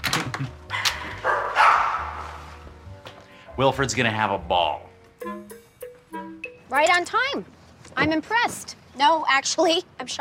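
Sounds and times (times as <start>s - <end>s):
dog barking: 0.7s - 2.4s
speech: 3.6s - 4.9s, 6.7s - 10.2s.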